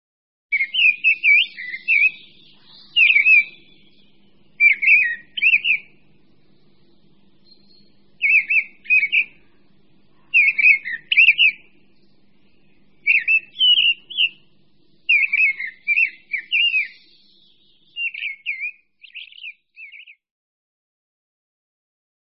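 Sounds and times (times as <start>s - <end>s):
mistle thrush singing in a spring forest: 0.5s - 6.0s, 7.4s - 9.4s, 10.3s - 11.7s, 13.0s - 14.5s, 15.1s - 20.2s.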